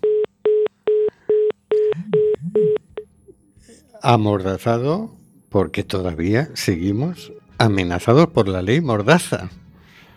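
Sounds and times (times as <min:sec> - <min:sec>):
telephone busy signal: 0:00.0 - 0:03.0
speech: 0:04.0 - 0:09.6.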